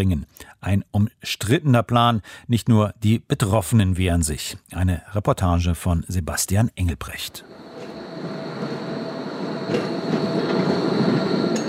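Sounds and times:
speech: 0.0 - 7.6, 9.7 - 10.3
tram in northern Berlin rolling along its rails where the line turns: 7.4 - 11.6.

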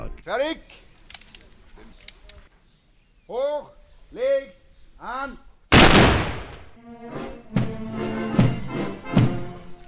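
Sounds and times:
speech: 0.2 - 0.9, 3.3 - 5.5, 6.8 - 8.0
ceremonial gun salute volley: 5.3 - 6.7.

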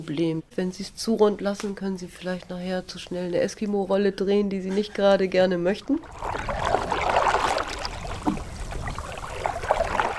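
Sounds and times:
speech: 0.0 - 6.6
gentle water lapping against the bow of a gliding dugout canoe: 5.8 - 10.1.

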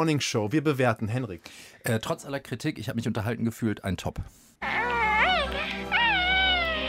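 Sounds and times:
speech: 0.0 - 4.8
small alien creature high sing-song cooing: 4.6 - 6.8.

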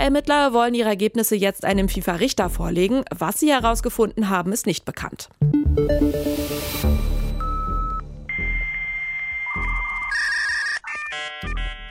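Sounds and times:
speech: 0.0 - 7.0
dial-up modem carrier whistle: 7.4 - 10.3
dial tone: 7.5 - 11.8
dial-up modem buzzing screeches and warbling bursts of noise: 9.5 - 11.3.

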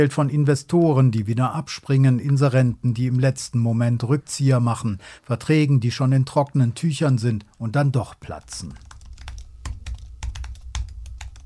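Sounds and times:
speech: 0.0 - 8.9
colleagues typing on laptop keyboards: 8.2 - 11.4.

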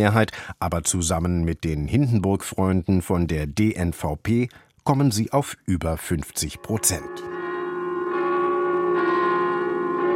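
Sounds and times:
speech: 0.0 - 7.4
church bells ringing: 6.5 - 10.1.

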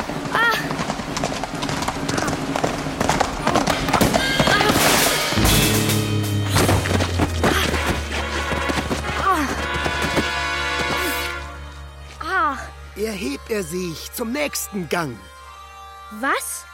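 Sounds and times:
horse hoofbeats galloping in a joust: 0.0 - 11.6
low rumbling drone: 5.3 - 10.5
speech: 13.6 - 15.3, 16.1 - 16.7.

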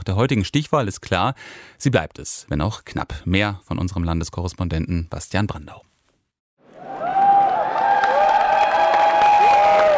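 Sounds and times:
speech: 0.0 - 5.9
crowd of election supporters cheering: 6.6 - 9.9
supporters whooping and shouting: 6.8 - 9.9.

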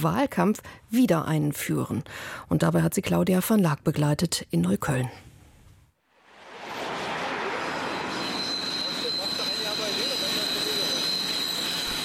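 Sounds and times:
speech: 0.0 - 5.3
dense roar of jammed four-lane traffic on a damp cold morning: 6.2 - 9.8
commuter train squealing overhead with a high-pitched metallic whine: 6.5 - 12.0.

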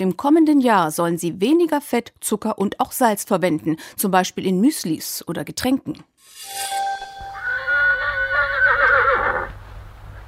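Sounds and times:
speech: 0.0 - 6.8
horse neighing: 7.4 - 9.6.

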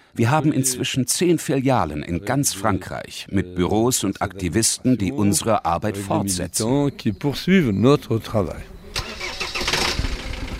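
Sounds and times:
speech: 0.1 - 8.8
bus engine starting up and rumbling: 8.8 - 10.5.

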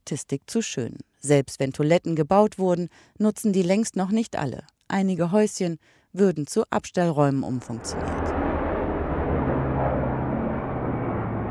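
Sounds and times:
speech: 0.1 - 8.4
helicopter roaring overhead: 7.7 - 11.4.

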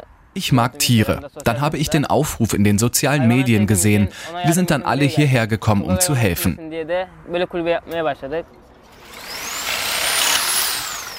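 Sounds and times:
speech: 0.4 - 8.6
electric saw cutting a wooden pallet: 8.9 - 11.1.

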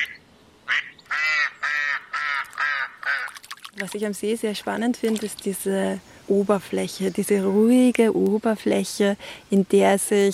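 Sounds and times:
ducks quacking at a small lake: 0.0 - 3.4
speech: 3.8 - 10.3.

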